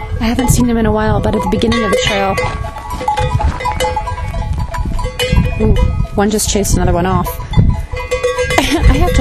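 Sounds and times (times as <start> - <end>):
speech: 0.2 - 2.7, 5.6 - 7.4, 8.7 - 9.2
donkeys munching and tearing at shrubs beside a trail: 1.3 - 6.1
leaves and twigs crunching and rustling: 1.8 - 5.0.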